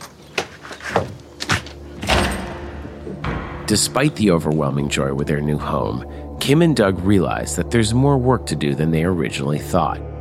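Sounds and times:
stuck door of a new home thumping as it is shoved: 1.0s - 4.2s
speech: 3.7s - 10.1s.

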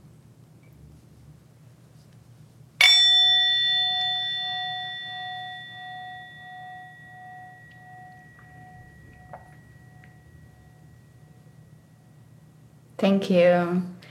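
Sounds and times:
faint low hum: 0.0s - 14.1s
meditation bell ringing: 2.8s - 12.8s
speech: 13.0s - 13.9s.

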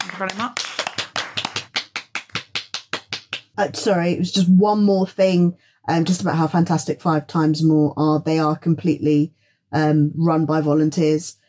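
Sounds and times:
audience applauding a speaker: 0.0s - 3.6s
speech: 0.2s - 0.7s, 3.6s - 11.4s.

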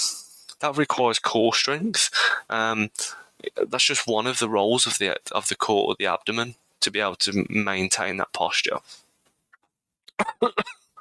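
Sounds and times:
speech: 0.6s - 9.0s, 10.2s - 10.8s
harsh coughing fit: 10.2s - 10.9s.

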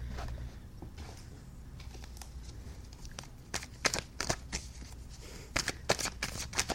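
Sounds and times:
deck of cards being shuffled: 1.8s - 6.7s.

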